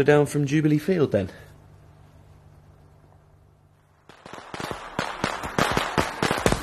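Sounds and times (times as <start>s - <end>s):
speech: 0.0s - 1.5s
fireworks exploding: 3.9s - 6.6s.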